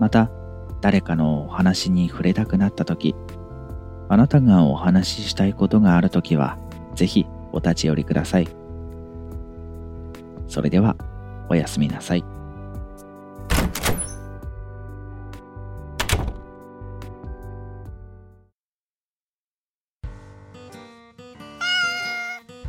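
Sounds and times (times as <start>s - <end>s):
speech: 0.0s - 3.4s, 4.1s - 8.6s, 10.5s - 12.4s
cat meowing: 21.6s - 22.5s.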